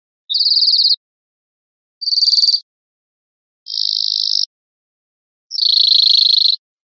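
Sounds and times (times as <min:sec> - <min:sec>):
European greenfinch short millet-like trills: 0:00.3 - 0:01.0, 0:03.7 - 0:04.5, 0:05.5 - 0:06.6.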